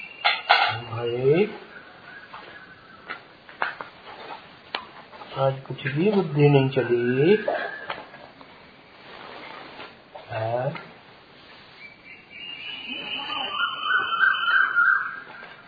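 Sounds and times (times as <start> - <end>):
Asian koel calling: 0.0 - 3.4, 5.9 - 8.4, 11.7 - 15.6
speech: 5.4 - 7.6.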